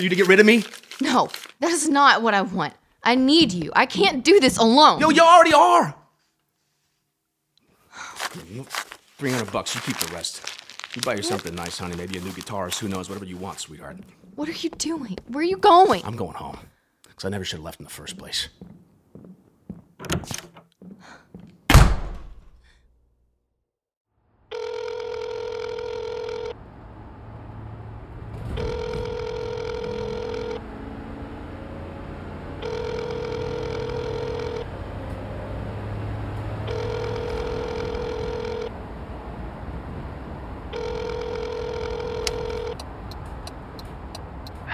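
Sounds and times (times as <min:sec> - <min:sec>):
speech: 0:00.0 - 0:06.0, 0:08.3 - 0:19.3, 0:20.0 - 0:20.5
sharp door-like thunks: 0:20.0 - 0:20.6, 0:21.7 - 0:22.6
telephone ringing in bright electronic bursts: 0:24.5 - 0:26.6, 0:28.6 - 0:30.6, 0:32.6 - 0:34.7, 0:36.6 - 0:38.7, 0:40.7 - 0:42.8.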